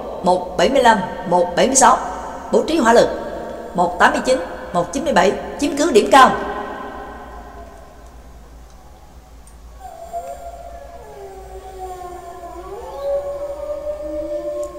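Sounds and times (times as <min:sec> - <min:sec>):
speech: 0:00.2 - 0:06.5
pack of wolves howling: 0:09.8 - 0:14.7.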